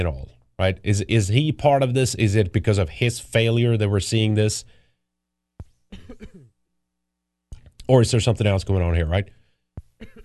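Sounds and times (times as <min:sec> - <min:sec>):
speech: 0:00.0 - 0:04.8, 0:07.9 - 0:09.4
sharp cough: 0:05.9 - 0:06.6, 0:10.0 - 0:10.2
rough throat clearing: 0:06.0 - 0:06.5, 0:10.0 - 0:10.2.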